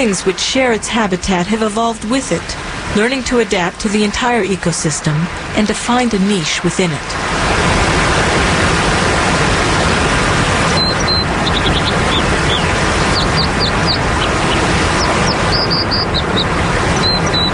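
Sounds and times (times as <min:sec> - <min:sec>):
speech: 0:00.0 - 0:07.5
loud steady roar of rushing water from a waterfall: 0:00.0 - 0:17.5
small bird's sharp high chirps: 0:10.7 - 0:17.5.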